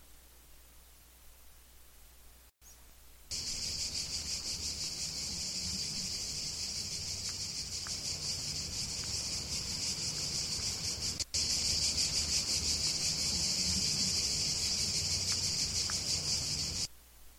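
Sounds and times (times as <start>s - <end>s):
cicadas in Italy singing: 3.3s - 16.9s.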